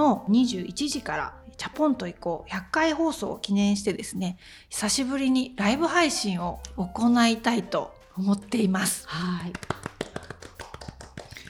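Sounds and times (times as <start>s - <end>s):
speech: 0.0s - 9.8s
hands clapping: 9.2s - 11.4s.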